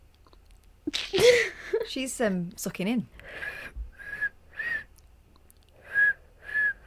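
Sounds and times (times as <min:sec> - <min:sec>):
speech: 0:01.9 - 0:03.6
person whistling a Christmas song melody in a song-guessing game: 0:04.0 - 0:04.9, 0:05.8 - 0:06.8.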